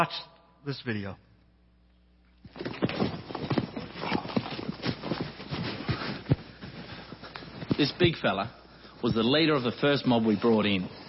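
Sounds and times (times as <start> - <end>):
speech: 0.0 - 1.3, 7.8 - 11.0
horse hooves clip-clopping on hard ground: 2.4 - 8.3.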